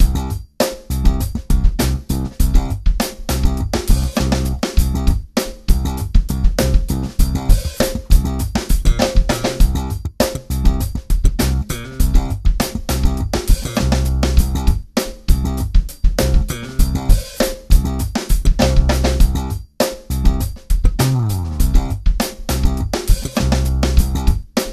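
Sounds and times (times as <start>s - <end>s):
funky virtual bassist bass line: 0.0s - 24.4s.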